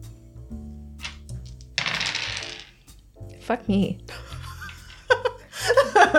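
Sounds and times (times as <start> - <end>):
soft music: 0.0 - 6.1
dice clattering on a hard table: 1.0 - 2.9
speech: 3.5 - 4.2
laughter: 4.1 - 6.1.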